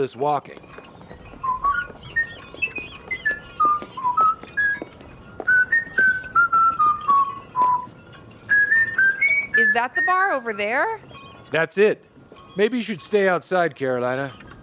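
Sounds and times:
speech: 0.0 - 0.8, 9.6 - 14.4
person whistling a simple melody: 1.4 - 10.6.

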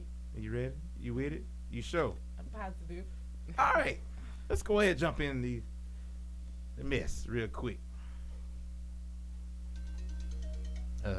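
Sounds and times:
steady low hum: 0.0 - 11.1
speech: 0.4 - 5.7, 6.8 - 7.9
phone ringtone: 9.7 - 11.1.

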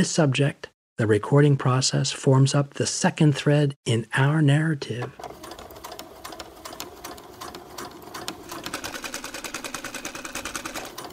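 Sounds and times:
speech: 0.0 - 5.4
sewing machine running: 5.2 - 11.1.

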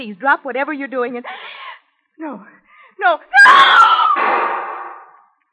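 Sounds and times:
speech: 0.0 - 1.6, 2.2 - 4.6
woman on the phone screaming: 3.3 - 4.2.

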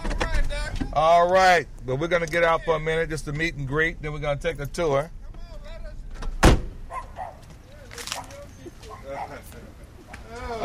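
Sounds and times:
speech: 1.0 - 5.2
parked car door shutting: 6.1 - 6.8.

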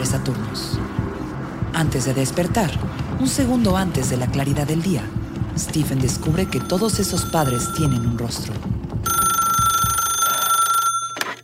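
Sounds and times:
speech: 0.2 - 0.8, 1.8 - 8.7
telephone ringing with electronic trill: 6.0 - 11.4.

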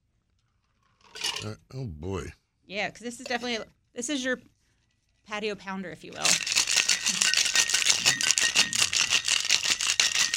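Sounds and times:
speech: 1.4 - 4.6, 5.2 - 6.5
cocktail shaker rattling with ice: 6.1 - 10.3.

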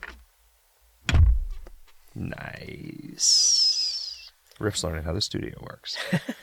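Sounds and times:
studio door slamming shut: 1.1 - 1.8
studio door opening with a faint rustle: 1.1 - 1.9
speech: 2.2 - 3.6, 4.6 - 6.4.

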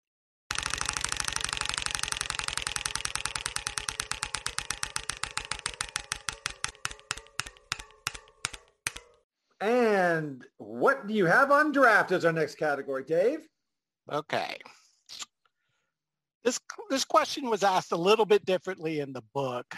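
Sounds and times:
prize wheel spun during a sports quiz game clicking: 0.5 - 9.2
speech: 9.6 - 13.5, 14.1 - 15.2, 16.4 - 19.7.

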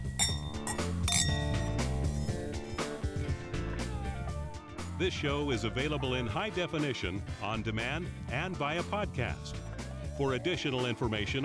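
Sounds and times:
wine glasses clinking together in a toast: 0.0 - 3.3
music: 0.0 - 11.4
speech: 5.0 - 9.6, 10.2 - 11.4.

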